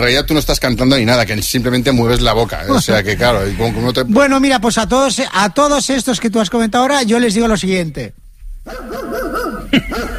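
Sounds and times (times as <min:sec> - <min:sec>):
speech: 0:00.0 - 0:10.1
distant dog barking: 0:08.7 - 0:10.1.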